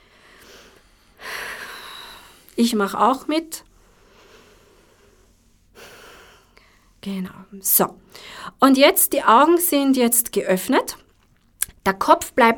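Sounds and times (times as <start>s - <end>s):
deep slow belly breaths close to the mic: 0.0s - 2.6s, 3.7s - 7.0s, 8.0s - 8.6s
speech: 2.6s - 3.7s, 7.0s - 11.0s, 11.9s - 12.5s.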